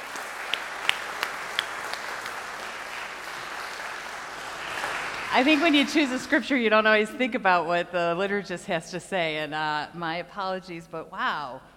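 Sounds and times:
church audience applauding after a scripture reading: 0.0s - 6.4s
speech: 5.4s - 11.7s.

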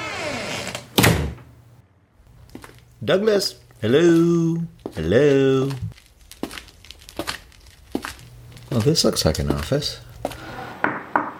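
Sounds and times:
front door of a home creaking open: 0.0s - 1.5s
front door of a home thudding: 1.0s - 1.5s
speech: 3.0s - 5.9s, 8.7s - 10.0s.

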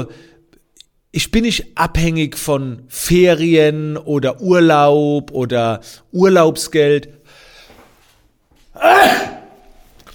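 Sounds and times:
speech: 0.0s - 0.3s, 1.1s - 7.2s, 8.8s - 9.4s
sneeze: 8.8s - 9.6s.

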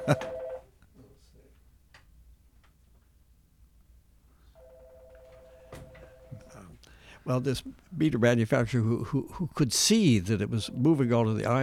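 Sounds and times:
speech: 0.0s - 0.3s, 7.2s - 11.6s
telephone ringing: 0.0s - 0.7s, 4.6s - 6.5s, 10.5s - 11.6s.

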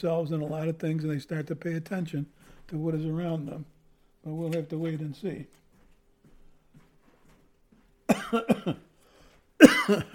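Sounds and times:
speech: 0.0s - 5.6s, 8.3s - 8.9s, 9.6s - 10.1s
person coughing from an itchy throat: 8.1s - 8.9s, 9.6s - 10.1s.

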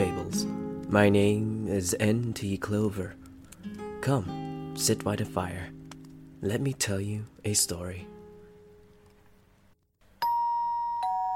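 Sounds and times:
speech: 0.9s - 3.2s, 4.0s - 5.8s, 6.4s - 8.2s
doorbell chiming: 10.2s - 11.3s.

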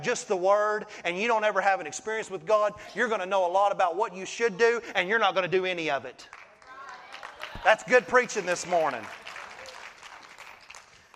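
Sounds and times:
speech: 0.0s - 6.4s, 7.6s - 9.3s
congregation applauding: 6.3s - 11.1s.

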